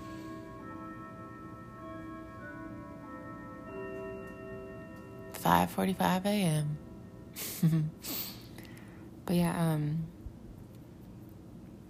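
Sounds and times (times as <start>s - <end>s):
grandfather clock chiming with ringing bell tones indoors: 0.0s - 8.0s
speech: 5.4s - 6.8s, 7.4s - 8.2s, 9.3s - 10.1s.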